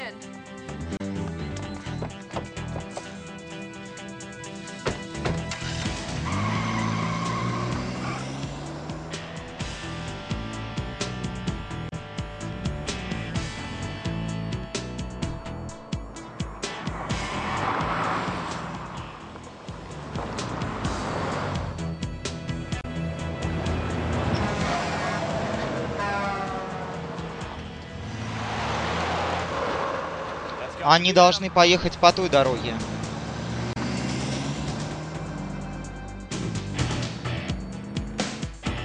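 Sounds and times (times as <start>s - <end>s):
car engine revving and roaring: 0.8s - 38.8s
car tires skidding and squealing: 4.5s - 9.6s, 16.1s - 22.0s, 23.2s - 38.5s
speech: 30.9s - 32.9s.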